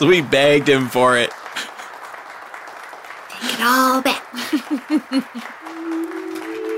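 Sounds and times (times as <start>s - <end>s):
speech: 0.0s - 1.4s, 3.6s - 6.1s
crowd applause: 0.0s - 6.7s
laughter: 1.6s - 2.0s, 4.3s - 6.7s
sustained tone: 5.7s - 6.7s.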